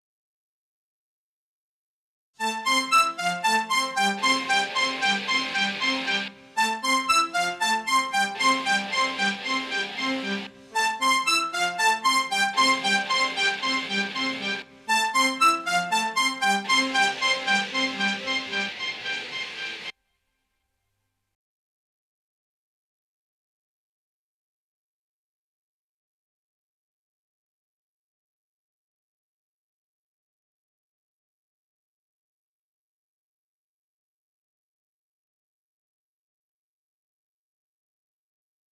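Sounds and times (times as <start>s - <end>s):
multitrack keyboard instrument playing: 2.4s - 19.9s.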